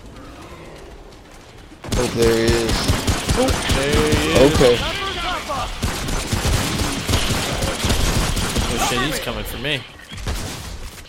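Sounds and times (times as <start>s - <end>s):
rapid gunfire in a shooter video game: 1.8s - 9.4s
speech: 2.0s - 5.8s, 8.8s - 10.0s.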